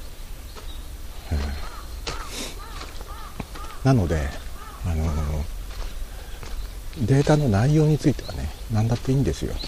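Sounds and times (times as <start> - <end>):
steady hiss: 0.0 - 9.6
bird calling outdoors with harsh caw-like cries: 1.2 - 6.7
speech: 3.8 - 5.6, 7.0 - 9.6.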